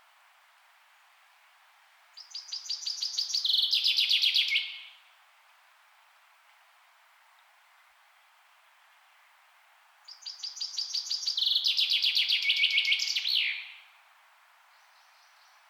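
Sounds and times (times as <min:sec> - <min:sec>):
common chaffinch singing: 0:02.1 - 0:05.1, 0:10.0 - 0:14.0.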